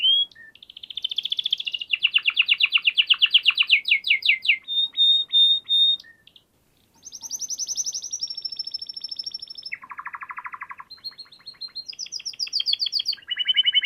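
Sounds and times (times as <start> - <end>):
Canary song of fast trilled tours for training other birds: 0.0 - 13.8.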